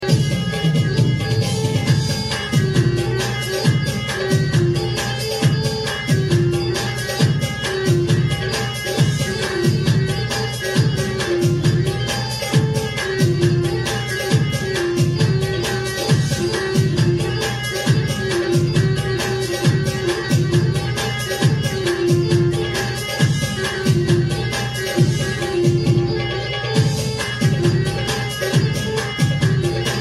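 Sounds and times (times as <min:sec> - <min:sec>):
saz: 0:00.0 - 0:29.9.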